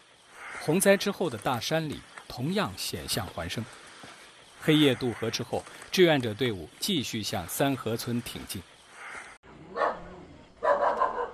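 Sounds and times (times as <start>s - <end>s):
speech: 0.7s - 3.8s, 4.6s - 8.7s
dog barking at night in a mountain village: 9.7s - 11.3s.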